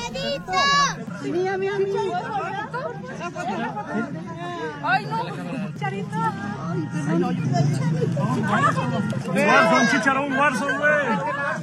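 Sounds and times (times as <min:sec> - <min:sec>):
excited shouts: 0:00.0 - 0:01.0
dense crowd of fans chattering outside: 0:00.0 - 0:10.5
speech: 0:01.2 - 0:11.6.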